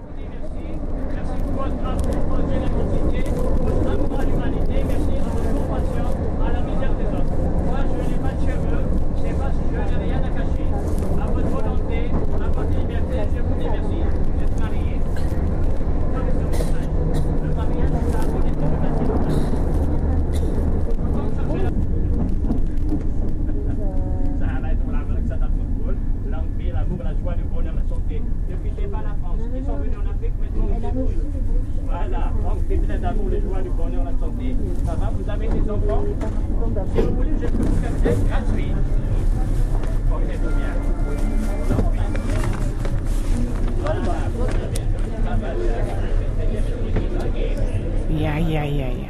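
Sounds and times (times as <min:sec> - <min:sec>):
moving subway train carriage rumble: 0:00.0 - 0:49.0.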